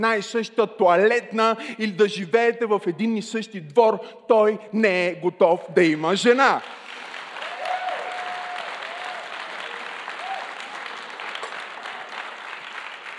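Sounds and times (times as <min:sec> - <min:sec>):
speech: 0:00.0 - 0:06.8
audience clapping in a church hall: 0:05.9 - 0:13.1
faint whoops: 0:07.4 - 0:10.8.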